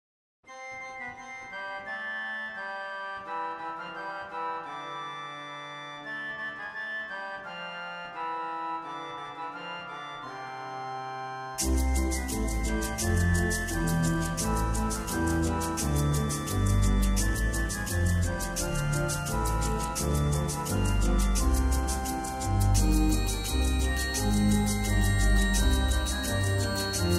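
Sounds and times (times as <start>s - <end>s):
organ reeds: 0.6s - 27.1s.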